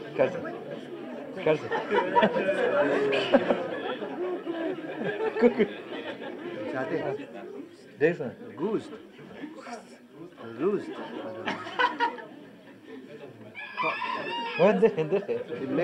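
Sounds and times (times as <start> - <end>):
people talking: 0.0 - 15.8
laughter: 1.4 - 7.6, 10.6 - 15.8
rooster crowing: 13.6 - 14.9.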